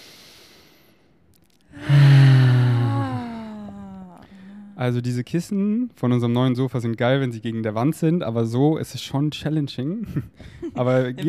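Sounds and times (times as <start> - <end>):
deep breath in and out: 0.0 - 3.6
long voiced sigh: 1.7 - 4.8
speech: 4.8 - 11.2.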